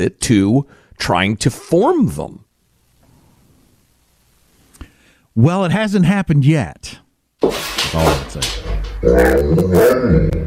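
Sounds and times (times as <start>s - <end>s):
speech: 0.0s - 2.4s, 5.4s - 10.4s
dog whining and grumbling like human speech: 8.8s - 10.4s.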